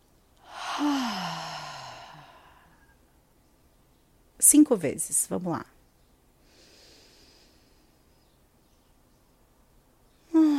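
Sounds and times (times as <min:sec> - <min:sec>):
slow exhale through the mouth during a guided breathing exercise: 0:00.4 - 0:03.0, 0:06.4 - 0:07.9
speech: 0:00.8 - 0:01.3, 0:04.5 - 0:05.8.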